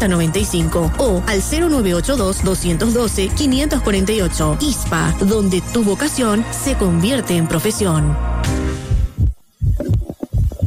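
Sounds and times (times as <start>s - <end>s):
speech: 0.0s - 8.6s
first heartbeat: 8.7s - 10.6s.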